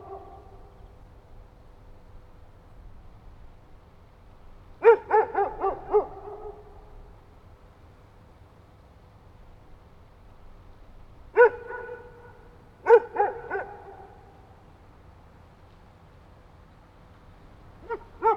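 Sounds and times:
dog barking: 0.0s - 0.6s, 4.8s - 6.9s, 11.4s - 14.4s, 17.8s - 18.3s.

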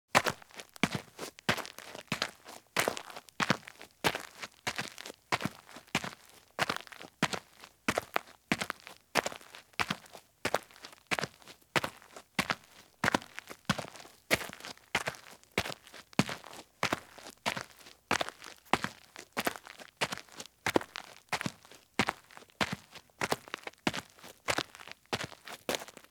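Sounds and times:
running shoes walking at fast pace on roadside or driveway gravel: 0.2s - 26.0s.

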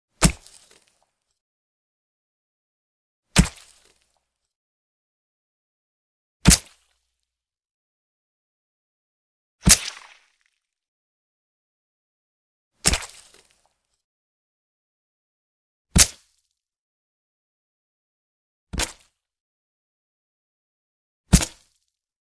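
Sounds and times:
knife stabbing: 0.2s - 0.9s, 3.4s - 4.0s, 6.4s - 6.8s, 9.6s - 10.2s, 12.8s - 13.5s, 16.0s - 16.2s, 18.8s - 19.1s, 21.3s - 21.7s.

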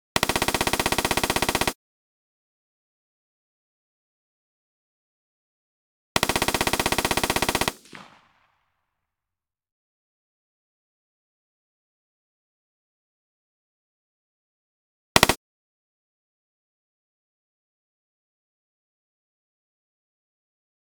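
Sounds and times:
simulated M-16 rifle three-shot burst: 0.2s - 1.8s, 6.2s - 8.4s, 15.2s - 15.4s.

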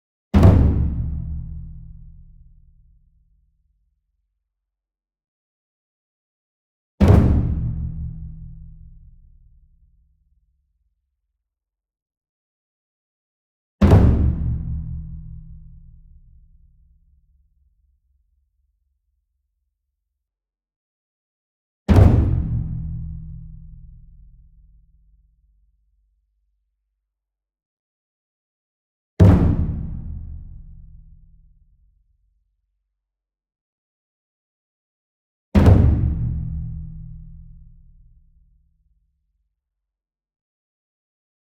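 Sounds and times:
ensemble taiko drum flam at medium strength: 0.4s - 2.1s, 7.0s - 9.2s, 13.8s - 16.1s, 21.9s - 24.0s, 29.2s - 30.9s, 35.6s - 37.6s.

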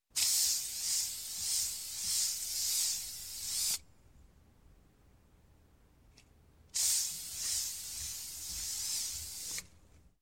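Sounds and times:
aerosol spray can: 0.2s - 3.8s, 6.8s - 9.7s.

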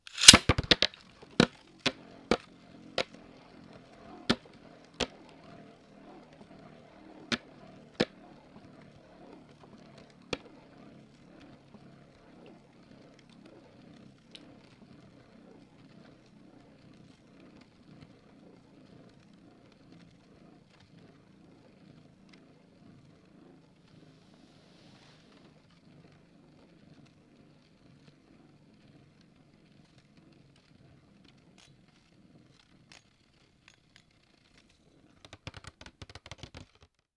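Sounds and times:
spinning top toy: 0.0s - 8.6s, 25.3s - 36.8s.

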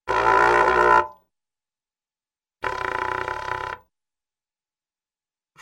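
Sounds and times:
cartoon muted trumpet: 0.0s - 1.2s, 2.6s - 3.8s.

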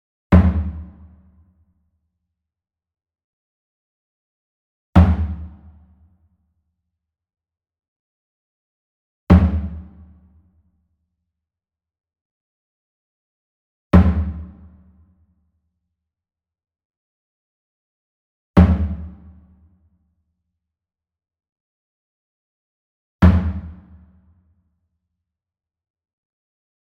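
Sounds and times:
small fontonfrom drum hit hard with medium beater: 0.3s - 1.0s, 5.0s - 5.6s, 9.3s - 9.9s, 14.0s - 14.6s, 18.6s - 19.1s, 23.2s - 23.8s.

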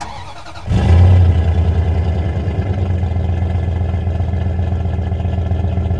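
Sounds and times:
truck engine starting: 0.0s - 5.9s.

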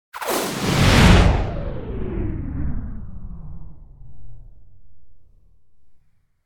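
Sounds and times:
sci-fi weapon blast whoosh: 0.2s - 3.4s.

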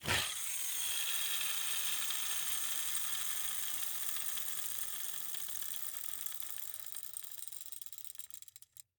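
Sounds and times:
old-fashioned all-metal rollerskates with wooden wheels spinning: 0.0s - 8.2s.

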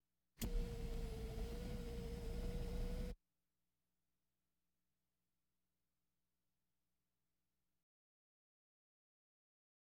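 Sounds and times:
various automobiles: 0.4s - 3.2s.

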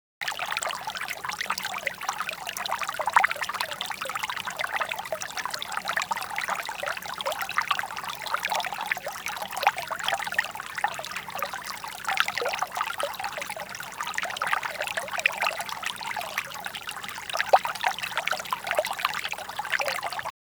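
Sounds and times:
small water stream: 0.0s - 20.3s.

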